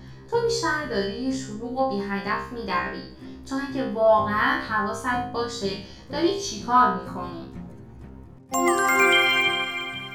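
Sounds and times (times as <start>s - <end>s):
speech: 0.5s - 7.5s, 8.5s - 9.2s
mobile phone message notification chime: 8.5s - 10.1s.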